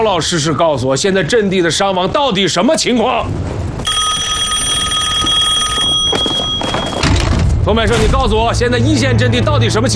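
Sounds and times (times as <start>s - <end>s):
speech: 0.0s - 4.3s, 7.7s - 9.9s
telephone bell ringing: 3.8s - 7.2s.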